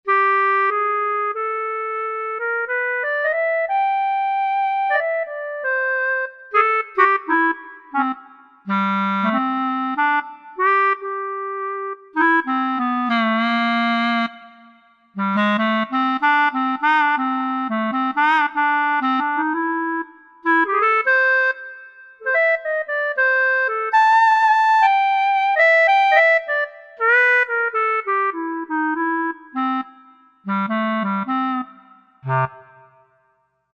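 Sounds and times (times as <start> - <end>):
clarinet on a Korg TR-Rack synthesizer: 0.0 - 33.3.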